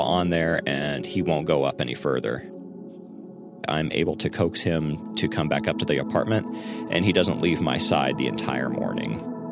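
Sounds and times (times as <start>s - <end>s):
dense chorus of crows squawking: 0.0s - 3.3s
speech: 0.1s - 2.6s, 3.7s - 9.3s.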